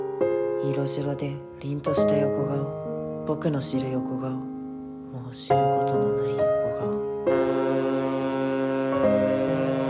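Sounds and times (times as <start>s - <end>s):
speech: 0.6s - 4.5s, 5.1s - 7.4s
ship's steam whistle blowing: 7.3s - 9.8s.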